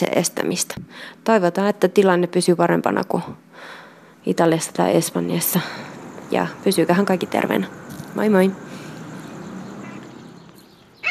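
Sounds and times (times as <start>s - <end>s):
speech: 0.0s - 8.7s
faint bird calls in a yard: 7.7s - 11.0s.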